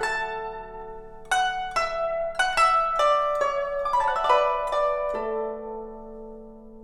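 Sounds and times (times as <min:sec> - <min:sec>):
guzheng playing in D at 70 bpm: 0:00.0 - 0:06.8.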